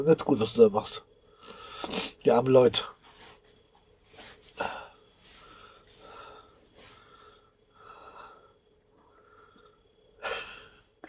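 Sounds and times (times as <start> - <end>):
speech: 0.0 - 3.0
heavy deep breathing with a wheezy whistling edge: 1.2 - 2.2, 4.1 - 11.0.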